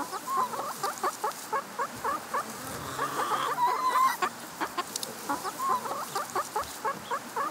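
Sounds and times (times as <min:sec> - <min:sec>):
chickens clucking: 0:00.0 - 0:07.4
hens murmuring: 0:00.0 - 0:07.4.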